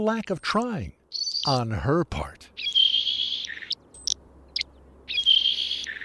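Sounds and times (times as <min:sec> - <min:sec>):
speech: 0:00.0 - 0:02.7
saltmarsh sparrow singing: 0:00.9 - 0:01.6, 0:02.5 - 0:06.0.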